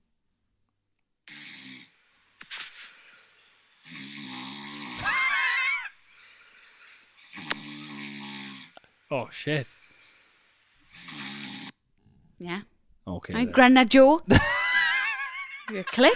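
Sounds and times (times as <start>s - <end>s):
loud snoring at night: 1.3s - 2.2s, 3.2s - 12.2s
speech: 9.1s - 9.8s, 12.4s - 14.6s, 15.7s - 16.1s.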